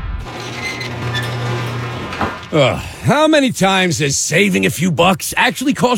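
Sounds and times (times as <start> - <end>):
faint mechanical creaks and rattles: 0.2 - 2.9
garage door rumbling open: 0.3 - 2.9
speech: 2.5 - 5.9.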